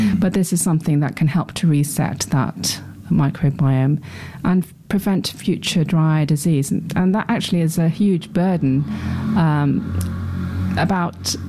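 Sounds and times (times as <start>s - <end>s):
speech: 0.2s - 10.2s, 10.8s - 11.4s
loud noisy motorbike passing by: 8.2s - 11.4s.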